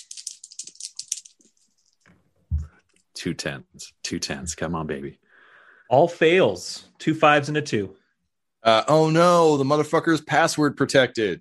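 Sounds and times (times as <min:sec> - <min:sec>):
Hunger dice rattling and clattering: 0:00.0 - 0:02.1
soft thump: 0:02.5 - 0:02.7
speech: 0:03.2 - 0:05.2, 0:05.9 - 0:08.0, 0:08.6 - 0:11.4.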